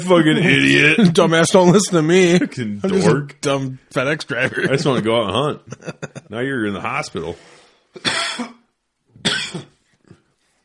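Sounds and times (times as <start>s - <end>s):
speech: 0.0s - 8.6s
laughter: 4.2s - 6.5s
person coughing after inhaling saliva while laughing: 8.0s - 10.2s.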